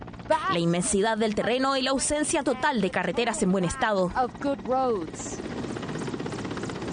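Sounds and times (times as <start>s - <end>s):
helicopter flying overhead: 0.0s - 6.9s
speech: 0.3s - 5.5s.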